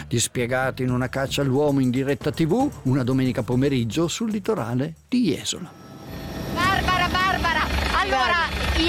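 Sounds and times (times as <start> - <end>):
speech: 0.1 - 5.8, 8.1 - 8.8
helicopter rotor rumble: 5.7 - 8.8.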